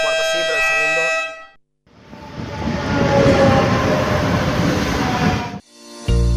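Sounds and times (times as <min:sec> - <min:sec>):
train horn blaring: 0:00.0 - 0:05.6
train rumbling into a station: 0:02.0 - 0:05.6.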